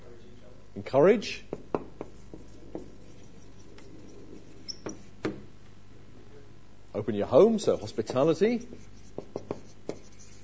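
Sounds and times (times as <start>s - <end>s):
speech: 0.8s - 1.5s, 7.1s - 8.9s
worn-out pen squeaking and tapping across a board: 2.0s - 5.4s, 8.1s - 10.4s.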